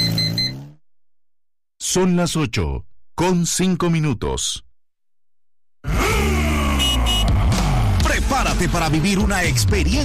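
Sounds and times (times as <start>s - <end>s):
speech: 2.0s - 4.7s, 8.3s - 10.0s
four-cylinder engine of a new CF Moto 500 SR motorcycle accelerating: 5.8s - 8.1s.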